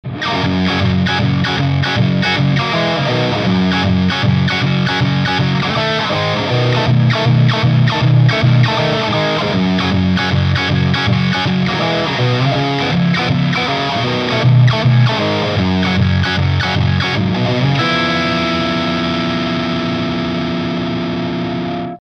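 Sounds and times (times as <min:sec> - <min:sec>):
guitar riff through Ibanez TS7 Hot effects pedal: 0:00.0 - 0:22.0.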